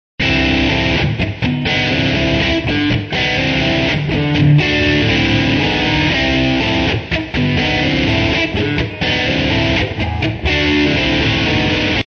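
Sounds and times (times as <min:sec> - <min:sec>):
bluesy music in D: 0:00.2 - 0:12.0.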